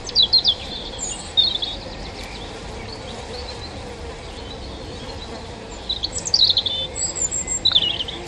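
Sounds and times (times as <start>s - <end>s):
European robin singing overhead: 0.0s - 8.2s.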